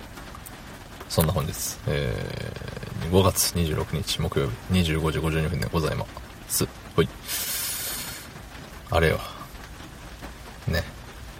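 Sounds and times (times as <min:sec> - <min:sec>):
soft steady rain falling: 0:00.0 - 0:11.3
speech: 0:01.1 - 0:07.5, 0:08.9 - 0:09.3, 0:10.6 - 0:10.9
person murmuring: 0:01.8 - 0:03.4.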